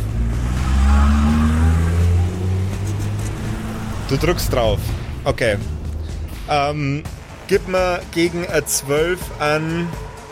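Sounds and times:
car engine revving as the driver floors it: 0:00.0 - 0:07.5
speech: 0:04.1 - 0:05.8, 0:06.5 - 0:10.1.

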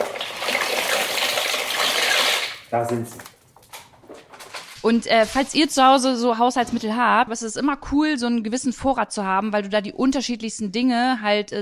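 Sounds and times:
dry shell pasta poured into a pot of water: 0:00.0 - 0:02.7
speech: 0:02.7 - 0:03.3, 0:04.8 - 0:11.6.

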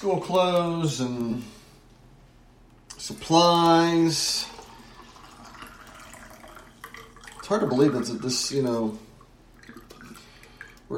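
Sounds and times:
speech: 0:00.0 - 0:01.6, 0:03.0 - 0:04.6, 0:07.5 - 0:09.1
coffee pouring into a cup: 0:02.9 - 0:10.9.

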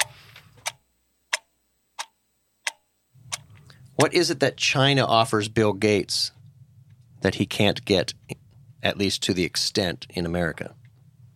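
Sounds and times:
clock ticking: 0:00.0 - 0:03.4
speech: 0:04.0 - 0:06.4, 0:07.2 - 0:10.8.

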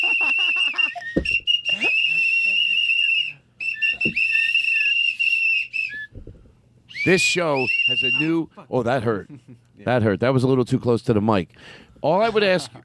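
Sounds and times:
several shrill whistles blowing loudly: 0:00.0 - 0:08.5
speech: 0:07.1 - 0:12.8.

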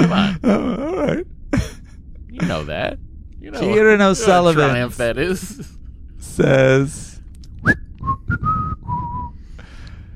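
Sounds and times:
speech: 0:00.0 - 0:01.3, 0:02.4 - 0:08.9
person whistling a short tune: 0:07.6 - 0:09.4.

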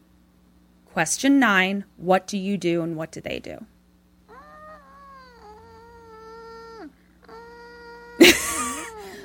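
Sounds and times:
speech: 0:01.0 - 0:03.7
woman making thin whimpering squeaks: 0:04.3 - 0:09.2.

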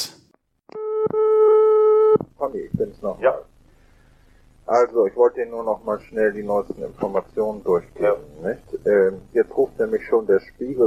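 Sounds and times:
steady buzzing telephone line tone: 0:00.7 - 0:02.2
speech: 0:02.4 - 0:03.5, 0:04.7 - 0:10.8.

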